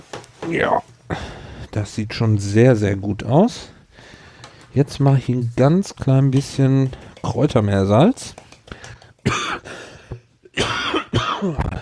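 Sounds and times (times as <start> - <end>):
speech: 0.5 - 3.8, 4.7 - 8.4
person coughing: 9.2 - 11.8
throat clearing: 9.2 - 11.8.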